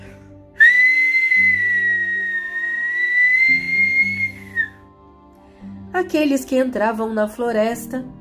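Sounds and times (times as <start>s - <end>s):
loud long steady high-pitched whistle: 0.6s - 4.8s
speech: 6.0s - 8.1s.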